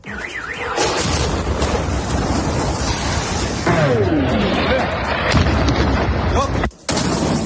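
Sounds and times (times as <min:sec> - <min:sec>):
falling whistle: 0:00.0 - 0:01.1
warbling alarm-like tone: 0:00.0 - 0:05.3
artillery shelling and explosions in Ukraine's Kherson region at Christmas: 0:00.1 - 0:07.4.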